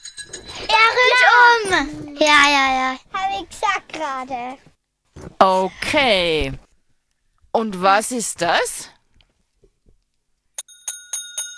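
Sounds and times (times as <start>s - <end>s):
speech: 1.7s - 4.7s, 5.4s - 6.6s, 7.6s - 8.9s
bicycle bell ringing: 10.6s - 11.5s.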